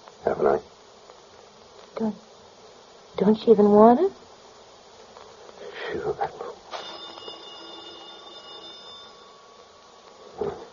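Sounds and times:
speech: 2.0 - 2.3, 3.2 - 4.2
telephone ringing: 6.7 - 10.3.

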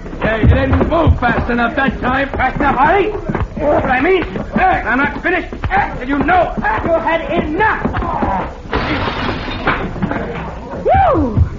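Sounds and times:
speech: 0.2 - 9.1, 10.9 - 11.5
plate glass mirror shattering during a fistfight: 8.7 - 9.9.

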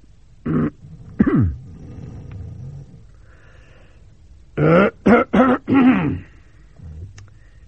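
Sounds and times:
deliberate coughing: 0.4 - 2.4, 4.6 - 7.2
deliberate throat clearing: 0.5 - 1.7, 4.6 - 7.2.

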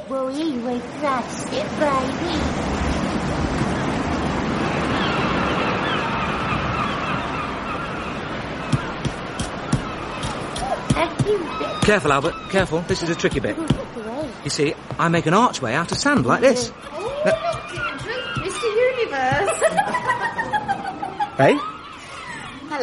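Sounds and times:
ocean waves breaking on a beach: 0.0 - 22.8
speech: 0.1 - 3.5, 11.9 - 17.5, 21.4 - 21.7
sharp knocks: 8.7 - 14.0, 14.7 - 16.3, 17.0 - 19.7
laughter: 16.4 - 22.7.

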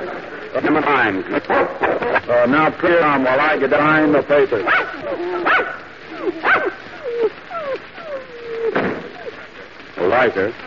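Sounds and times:
speech: 0.6 - 6.7, 10.2 - 10.6
dogs barking and baying: 1.4 - 2.3, 4.6 - 10.0.

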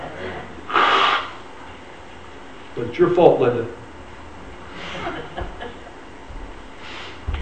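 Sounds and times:
person blowing their nose: 0.7 - 1.4, 6.8 - 7.2
speech: 3.0 - 3.8
laughter: 4.7 - 6.1.

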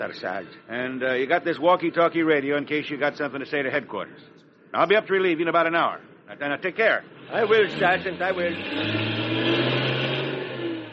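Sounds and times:
speech: 0.0 - 9.6
truck engine driving off: 7.2 - 10.9.

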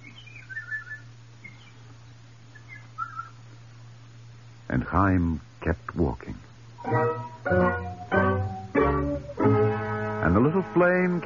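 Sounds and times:
morning bird answering with short whistled phrases: 0.0 - 1.8, 2.5 - 3.4
night bird singing short whistled phrases: 0.0 - 3.5, 6.8 - 9.4
speech: 4.7 - 7.9, 10.3 - 11.2.

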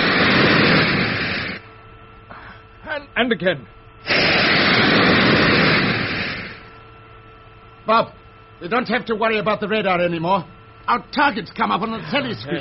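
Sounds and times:
spaceship braking jets firing: 0.0 - 1.6, 4.0 - 6.8
speech: 3.2 - 5.0, 7.9 - 12.6.

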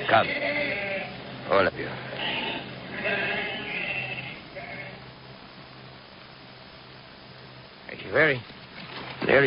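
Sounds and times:
sheep bleating: 0.0 - 1.3, 2.1 - 5.0
low rumble: 0.0 - 9.4
speech: 0.1 - 0.5, 1.5 - 2.4, 8.1 - 8.6, 9.2 - 9.4.

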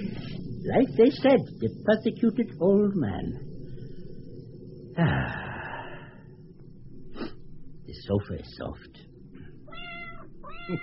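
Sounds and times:
speech: 0.6 - 3.5, 5.0 - 5.4, 7.9 - 9.1, 10.7 - 10.8
old cat meowing: 9.7 - 10.8.

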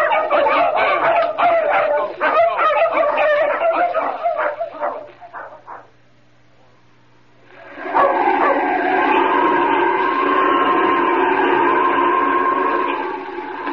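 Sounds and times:
several dogs barking and yipping excitedly: 0.0 - 6.0, 7.8 - 8.7
steady loud droning tone: 7.4 - 13.7.

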